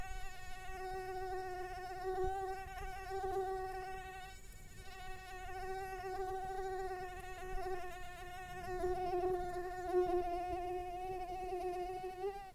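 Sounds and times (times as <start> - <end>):
insect giving a sustained whining buzz: 0.0 - 12.5.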